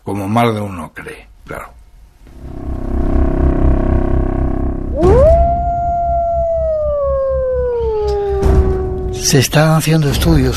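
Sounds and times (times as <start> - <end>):
speech: 0.1 - 1.8, 9.2 - 10.5
low steady rumbling drone: 2.0 - 9.2
single long wolf howl in Yellowstone: 4.9 - 9.3.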